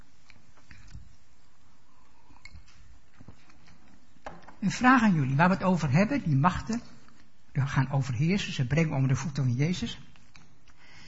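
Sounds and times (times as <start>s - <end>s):
person sipping a drink: 1.6s - 3.6s
speech: 4.6s - 6.9s, 7.6s - 10.1s.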